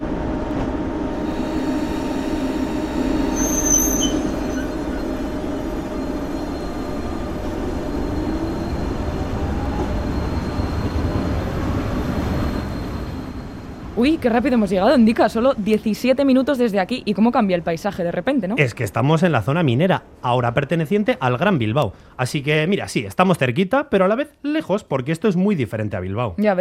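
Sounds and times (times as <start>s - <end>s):
wheel and track roar of a passenger train: 0.0s - 15.8s
moving passenger train near Bilbao: 0.0s - 22.2s
high squeal of a passenger train: 1.2s - 14.4s
speech: 14.0s - 26.5s.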